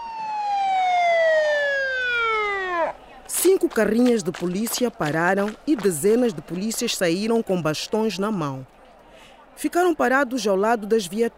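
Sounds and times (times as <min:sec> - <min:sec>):
siren wail sliding downward in pitch: 0:00.0 - 0:03.0
speech: 0:03.6 - 0:08.8, 0:09.6 - 0:11.3.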